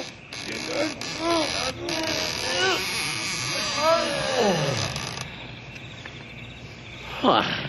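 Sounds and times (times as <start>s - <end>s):
heavy doors creaking and scraping open: 0.0s - 5.5s.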